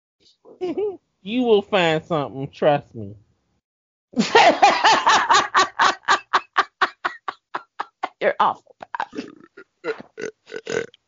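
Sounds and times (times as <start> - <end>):
speech: 0.3 - 3.2, 4.1 - 4.8, 8.2 - 10.9
laughter: 4.2 - 8.2
loud croaky stuttering burp: 9.0 - 11.0.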